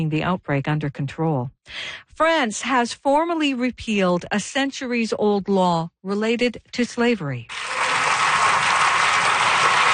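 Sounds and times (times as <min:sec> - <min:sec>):
speech: 0:00.0 - 0:07.8
lawmakers applauding in France's National Assembly after a unanimous vote: 0:07.5 - 0:09.9.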